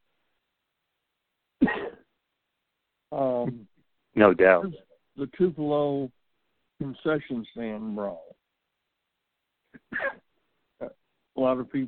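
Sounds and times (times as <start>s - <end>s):
cough: 1.6s - 2.2s, 9.7s - 11.0s
speech: 3.1s - 6.2s, 6.8s - 8.4s, 9.9s - 10.2s, 10.8s - 11.8s.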